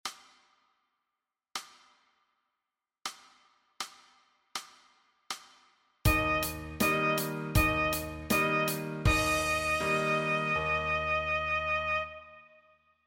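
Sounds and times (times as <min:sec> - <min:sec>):
saxophone playing high C: 0:06.1 - 0:12.8.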